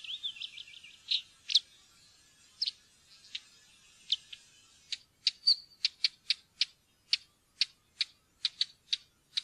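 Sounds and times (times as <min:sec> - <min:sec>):
Northern wheatear song: 0:00.0 - 0:09.4.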